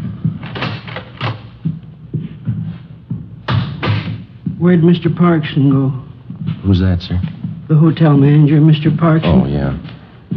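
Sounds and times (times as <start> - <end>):
hotel door opening and shutting: 0.4 - 1.5
speech: 4.6 - 6.0, 6.6 - 10.0.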